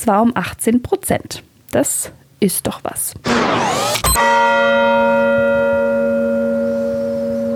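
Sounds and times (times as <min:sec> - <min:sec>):
speech: 0:00.0 - 0:06.3
church bell ringing: 0:04.2 - 0:07.4.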